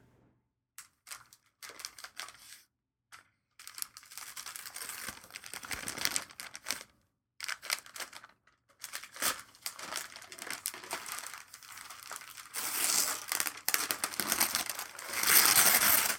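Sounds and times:
silver snowflake-patterned wrapping paper crinkling as a gift is unwrapped: 1.0 - 2.6, 3.6 - 16.1
wrapping paper being torn open: 3.6 - 16.1.

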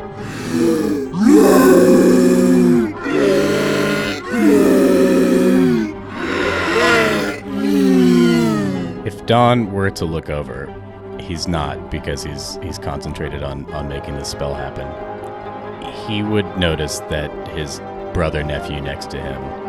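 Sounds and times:
person's voice imitating a monstrous creature's roar: 0.0 - 9.1
speech: 9.3 - 15.1, 16.1 - 19.6.

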